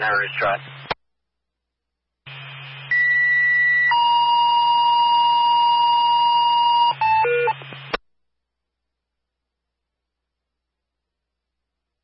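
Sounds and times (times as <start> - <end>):
low radio hum: 0.0 - 1.0, 2.3 - 3.9, 6.8 - 8.0
fire dispatch paging tone calling a fire department to a medical alarm: 2.9 - 7.7.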